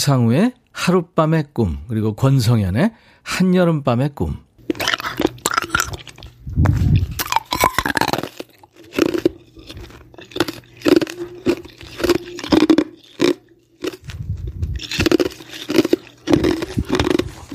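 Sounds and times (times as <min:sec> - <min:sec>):
speech: 0:00.0 - 0:04.4
crunching and chewing frozen ice cream: 0:04.6 - 0:17.5.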